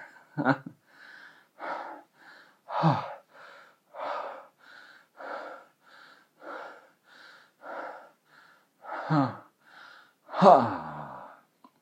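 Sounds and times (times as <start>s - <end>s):
loud rhythmic breaths and sharp inhales: 0.0s - 11.8s.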